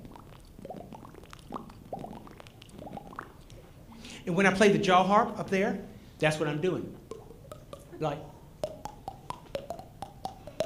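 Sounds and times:
tongue pushing water out of mouth: 0.0s - 4.0s, 7.0s - 10.6s
speech: 4.2s - 7.0s, 8.0s - 8.3s.

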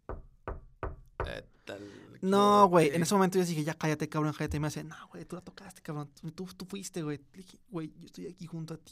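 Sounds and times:
firm knocks on a wooden door: 0.0s - 1.4s
speech: 1.3s - 8.9s.

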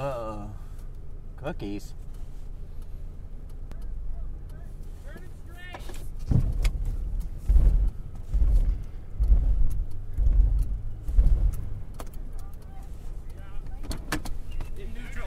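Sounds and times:
car engine idling in neutral heard from inside: 0.0s - 15.2s
speech: 1.4s - 2.1s
thumps and bumps: 5.8s - 12.2s.

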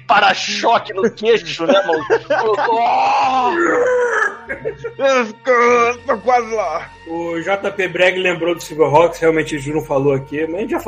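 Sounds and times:
speech: 0.1s - 10.8s
laughter: 0.4s - 6.0s
man yelling: 1.7s - 4.4s
man imitating a cartoon character's agonized transformation scream: 2.6s - 4.5s.

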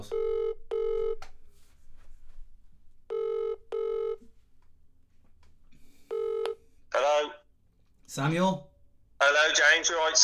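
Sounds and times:
phone ringback tone in double bursts of short beeps: 0.1s - 1.2s, 3.1s - 4.2s, 6.1s - 6.6s
speech: 8.2s - 10.2s.

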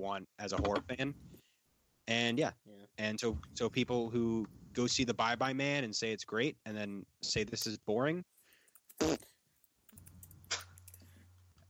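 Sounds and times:
speech: 0.0s - 1.4s, 2.1s - 8.3s, 9.0s - 9.3s
fart noise made with the mouth: 9.0s - 9.3s.

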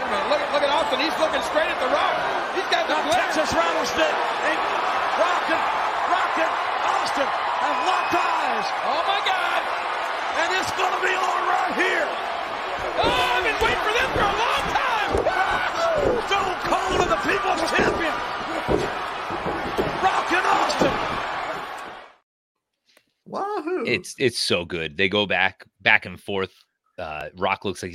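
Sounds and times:
big wrestling arena crowd roaring and cheering during a match: 0.0s - 22.2s
speech: 1.1s - 2.1s, 23.9s - 27.9s.

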